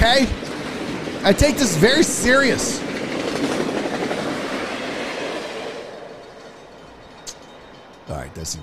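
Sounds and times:
train wheels clickety-clacking on rails: 0:00.0 - 0:08.6
speech: 0:00.1 - 0:00.4, 0:01.2 - 0:02.8, 0:08.3 - 0:08.6.

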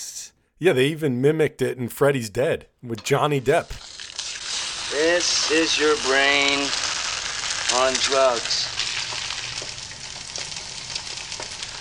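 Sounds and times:
speech: 0:00.0 - 0:03.8, 0:05.1 - 0:06.8, 0:07.7 - 0:08.8
eggs sizzling in a hot frying pan: 0:03.0 - 0:11.7.

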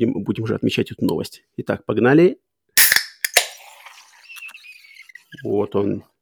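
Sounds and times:
speech: 0:00.0 - 0:02.4, 0:05.4 - 0:06.1
fizzing hiss as the nitro widget releases: 0:02.8 - 0:04.8
nitro widget beverage can cracking open: 0:02.8 - 0:05.2
thin high squeal as the nitro widget releases: 0:03.8 - 0:05.6.

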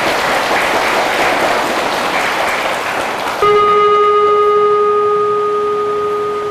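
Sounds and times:
loud dense round of applause from a crowd: 0:00.0 - 0:04.1
sustained resonant bell-like tone: 0:03.4 - 0:06.4.

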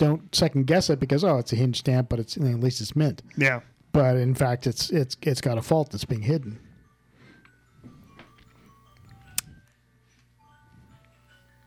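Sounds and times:
speech: 0:00.0 - 0:06.7
ice cream truck jingle: 0:06.8 - 0:09.6, 0:10.4 - 0:11.6.

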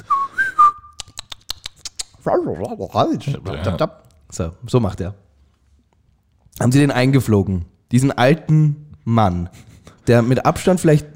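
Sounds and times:
person whistling: 0:00.0 - 0:01.2
sharp dry clicks: 0:00.9 - 0:02.2
speech: 0:02.2 - 0:05.2, 0:06.6 - 0:11.1.

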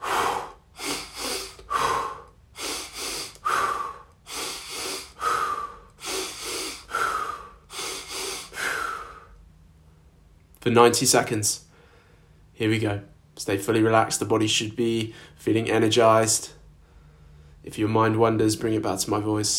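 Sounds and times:
longer breathy exhale through the mouth: 0:00.0 - 0:09.3
quick sniffing inhales through the nose: 0:00.0 - 0:09.4
speech: 0:10.6 - 0:11.7, 0:12.6 - 0:16.6, 0:17.7 - 0:19.5.

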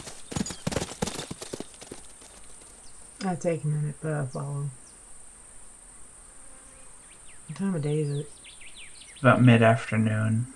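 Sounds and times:
hooves of a ridden horse clip-clopping along a road: 0:00.0 - 0:03.0
speech: 0:03.2 - 0:04.8, 0:07.5 - 0:08.4, 0:09.2 - 0:10.5.

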